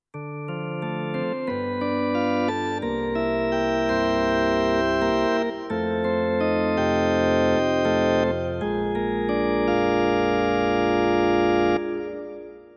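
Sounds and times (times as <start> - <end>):
drawbar organ: 0.2 - 12.6.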